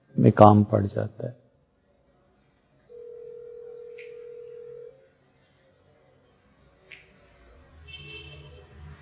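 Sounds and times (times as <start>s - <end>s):
speech: 0.3s - 1.4s
telephone ringing with electronic tone: 2.9s - 5.0s.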